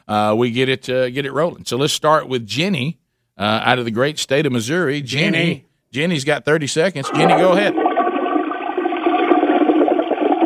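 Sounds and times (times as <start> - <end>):
speech: 0.1 - 7.9
toilet flushing: 7.0 - 10.4.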